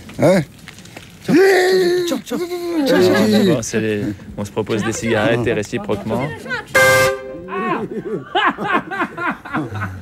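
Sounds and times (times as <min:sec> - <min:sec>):
speech: 0:00.2 - 0:00.6, 0:01.3 - 0:07.1, 0:07.8 - 0:09.9
people chattering: 0:02.1 - 0:09.0
people chuckling with laughter: 0:02.6 - 0:03.6, 0:07.4 - 0:09.9
vehicle horn blast: 0:06.8 - 0:07.5.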